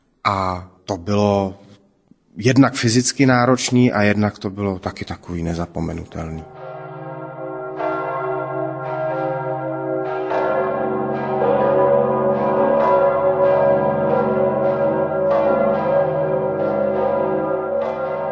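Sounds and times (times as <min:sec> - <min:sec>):
speech: 0:00.3 - 0:01.6, 0:02.4 - 0:06.6
large church bell tolling: 0:05.3 - 0:18.3.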